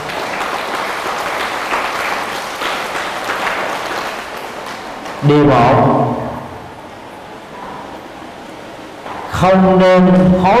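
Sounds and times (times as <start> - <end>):
audience of students applauding at a teacher's talk: 0.0 - 5.2
speech: 5.2 - 6.2, 9.4 - 10.5.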